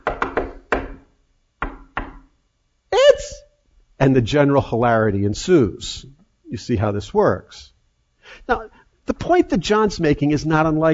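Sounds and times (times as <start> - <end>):
patterned knock on a wooden door: 0.0 - 1.0, 1.6 - 2.3
person calling out: 2.9 - 3.6
speech: 4.0 - 7.7, 8.3 - 10.9.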